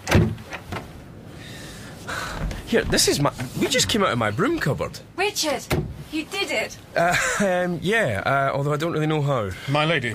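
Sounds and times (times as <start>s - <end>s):
door swinging open: 2.2s - 3.6s
door handle pressed down with a solid clunk: 2.4s - 3.4s
speech: 2.7s - 10.1s.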